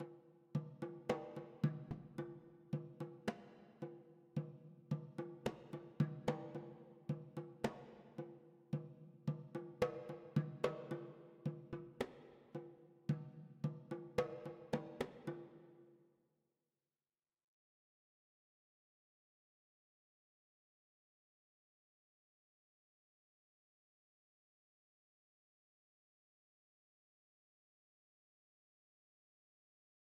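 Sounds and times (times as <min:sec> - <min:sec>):
drums: 0:00.0 - 0:15.8.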